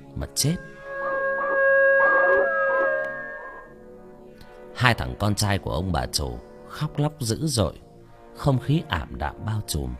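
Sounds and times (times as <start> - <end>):
sustained tonal background: 0.0 - 4.2
speech: 0.2 - 0.7, 4.8 - 7.8, 8.4 - 9.9
dying pet dog howling mournfully: 0.6 - 3.7.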